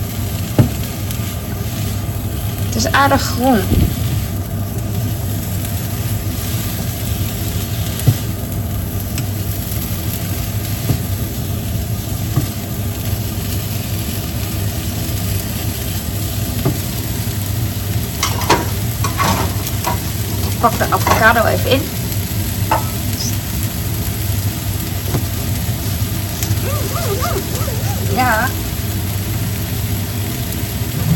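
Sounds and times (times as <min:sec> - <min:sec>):
food frying and sizzling in a pan: 0:00.0 - 0:31.1
kitchen extractor hood fan running: 0:00.0 - 0:31.1
speech: 0:02.8 - 0:03.9, 0:20.6 - 0:22.0, 0:28.2 - 0:28.6
scrapes and clinks: 0:18.2 - 0:21.2
laughter: 0:26.4 - 0:28.6.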